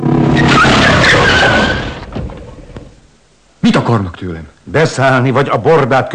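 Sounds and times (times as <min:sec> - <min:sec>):
car braking hard with tires squealing: 0:00.2 - 0:02.1
speech: 0:03.9 - 0:06.1.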